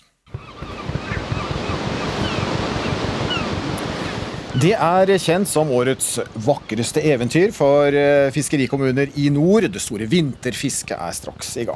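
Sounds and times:
ocean surf of breaking waves: 0.3s - 11.7s
speech: 4.6s - 11.7s.

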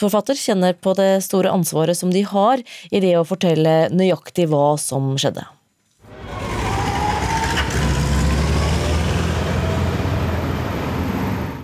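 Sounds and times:
speech: 0.0s - 5.6s
old military vehicle engines rumbling and revving in Grünerløkka, Oslo: 6.1s - 11.6s.

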